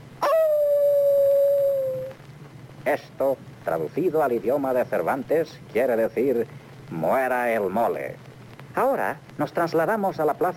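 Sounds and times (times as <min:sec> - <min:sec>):
sea lion howling: 0:00.2 - 0:02.2
speech: 0:02.9 - 0:10.5.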